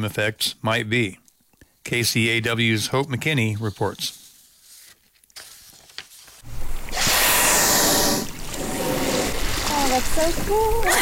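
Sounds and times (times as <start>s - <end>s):
speech: 0.0s - 1.2s, 1.8s - 4.2s, 10.0s - 11.0s
water splashing and rushing in Sitka Sound: 6.4s - 11.0s
gray whale blowing beside inflatable boat in Sitka Sound: 6.5s - 10.0s.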